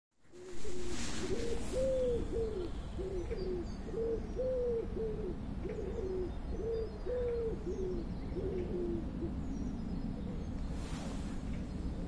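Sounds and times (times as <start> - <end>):
steady low background rumble: 0.2 - 12.0
pigeon cooing: 0.3 - 9.4.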